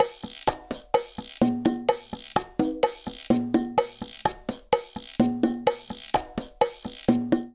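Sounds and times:
cha-cha-cha Latin percussion at 127 bpm: 0.0 - 7.5.

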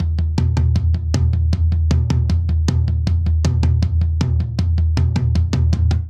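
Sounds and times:
tom drum loop at 157 bpm: 0.0 - 6.0.

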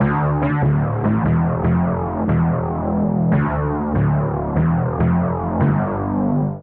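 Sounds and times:
bass line in D minor: 0.0 - 6.6.

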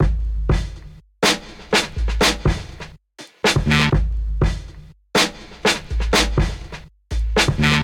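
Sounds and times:
drum breakbeats: 0.0 - 7.8.

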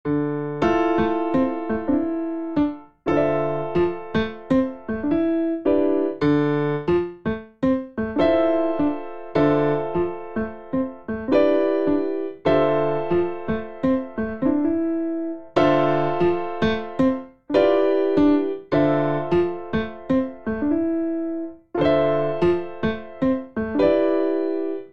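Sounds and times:
arpeggiated grand piano bass in D minor: 0.1 - 24.9.

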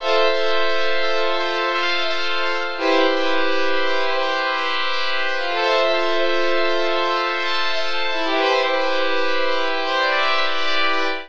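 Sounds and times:
talking vibrato keys accompaniment in A minor: 0.0 - 11.2.

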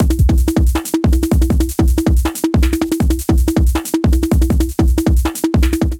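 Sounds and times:
MIDI drum beat at 160 bpm: 0.0 - 5.9.

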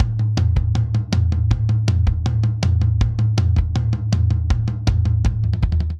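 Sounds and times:
energetic pop drum buildup: 0.0 - 5.9.

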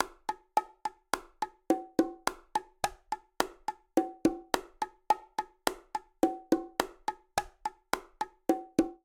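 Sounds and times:
bongos playing a melodic bolero rhythm: 0.0 - 9.0.

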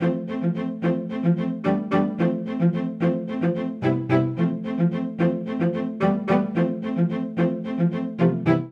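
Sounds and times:
string quartet rippling ostinato in C major: 0.0 - 8.7.

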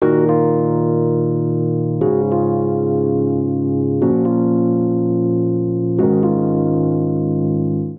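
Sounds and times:
sombre electric keyboard chord progression in E-flat minor at 120 bpm: 0.0 - 7.9.

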